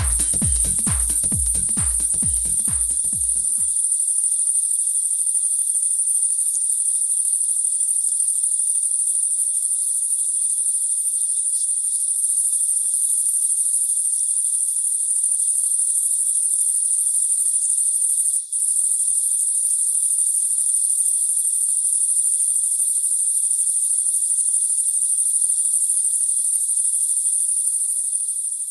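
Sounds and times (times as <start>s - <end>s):
low rhythmic thumps: 0.0s - 3.8s
crickets chirping at night in summer in Bonn: 3.7s - 28.6s.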